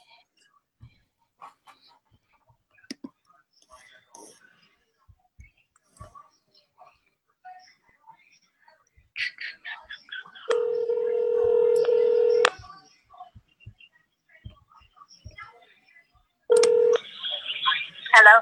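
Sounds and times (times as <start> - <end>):
hushed murmuring voices: 0.8 - 18.4
telephone keypad dialing tones: 10.5 - 12.6, 16.5 - 17.2.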